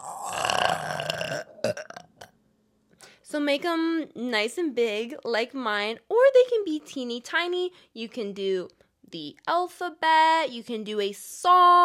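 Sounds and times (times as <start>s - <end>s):
long loud burp: 0.0s - 2.4s
short gulping hiccup-like bursts: 0.0s - 2.4s
speech: 3.3s - 11.8s.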